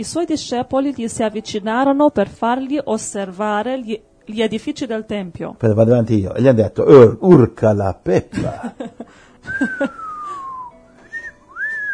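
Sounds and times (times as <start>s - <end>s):
speech: 0.0s - 10.0s
person whistling in amazement: 9.4s - 11.9s.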